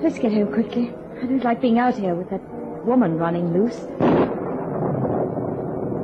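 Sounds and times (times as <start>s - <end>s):
speech: 0.0s - 4.3s
loud rumble of thunder from a storm: 4.0s - 6.0s.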